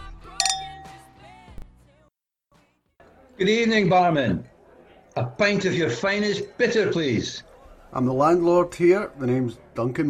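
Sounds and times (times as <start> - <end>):
glasses clinking together in a toast: 0.4 - 1.3
low murmuring room background: 3.0 - 10.0
speech: 3.4 - 4.5, 5.2 - 10.0.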